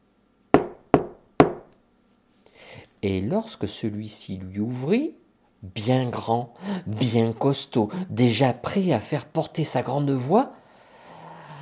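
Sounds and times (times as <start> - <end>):
firm knocking on a wooden door: 0.6 - 1.7
speech: 3.0 - 10.6.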